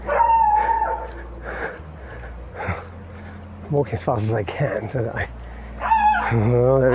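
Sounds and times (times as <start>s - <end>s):
steady low outdoor rumble: 0.0s - 6.9s
small pug dog yapping and whining: 0.1s - 1.0s
speech: 3.7s - 5.4s, 6.3s - 6.9s.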